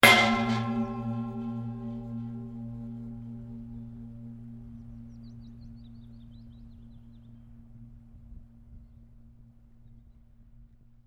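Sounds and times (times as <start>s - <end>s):
resonating metal pipe impact with long gong-like ring: 0.0s - 8.4s.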